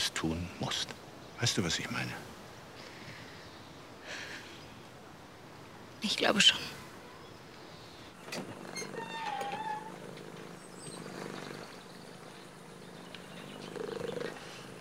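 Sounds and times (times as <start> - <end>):
speech: 0.2 - 2.4, 6.0 - 6.8, 8.3 - 8.9
cat purring: 9.7 - 14.7.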